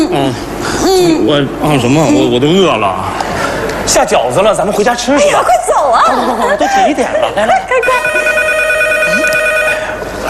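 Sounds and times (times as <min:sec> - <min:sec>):
speech: 0:00.1 - 0:03.2, 0:03.9 - 0:08.4
telephone ringing with electronic ring tone: 0:07.8 - 0:10.0.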